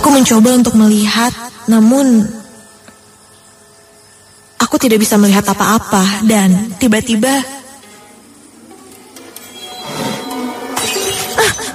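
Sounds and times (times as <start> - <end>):
speech: 0.2 - 2.4, 4.7 - 7.6
glass falling off a bedroom table and shattering: 10.7 - 11.7.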